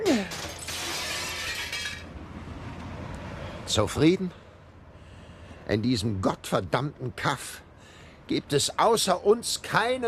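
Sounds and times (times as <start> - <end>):
window glass smashed and shattering: 0.2 - 2.1
speech: 3.7 - 4.4, 5.7 - 7.6, 8.3 - 10.0.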